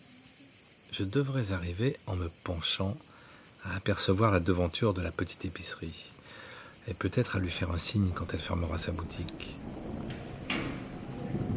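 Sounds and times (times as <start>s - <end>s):
speech: 1.0s - 6.1s, 6.9s - 9.8s
gate creaking with a thin high-pitched squeal: 7.5s - 11.5s
low rumble: 7.5s - 11.5s.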